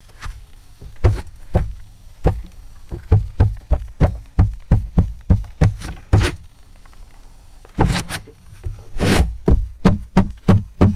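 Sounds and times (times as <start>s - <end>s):
paddle knocking against canoe hull: 0.8s - 6.3s, 9.4s - 10.9s.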